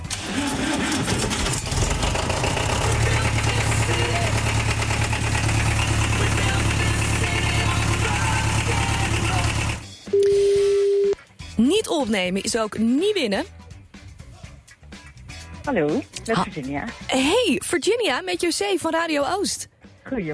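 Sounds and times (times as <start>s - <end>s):
tractor engine rumbling: 0.0s - 9.9s
electronic tone: 10.1s - 11.2s
speech: 12.0s - 13.6s, 15.7s - 20.3s.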